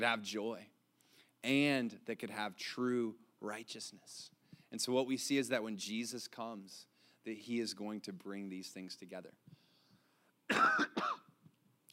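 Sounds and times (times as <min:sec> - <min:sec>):
speech: 0:00.0 - 0:00.7, 0:01.4 - 0:09.6, 0:10.5 - 0:11.2
person coughing harshly: 0:10.5 - 0:11.3.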